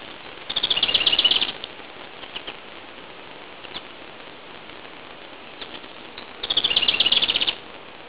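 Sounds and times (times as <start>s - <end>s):
unidentified bird calling: 0.5s - 2.6s, 5.6s - 7.6s.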